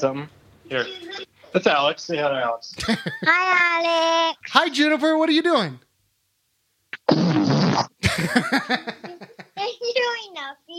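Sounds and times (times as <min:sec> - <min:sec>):
speech: 0:00.0 - 0:05.9, 0:07.8 - 0:09.2
child giggling and chattering: 0:02.8 - 0:04.0, 0:08.0 - 0:09.9
loud buzzy fart into a phone: 0:06.9 - 0:08.0.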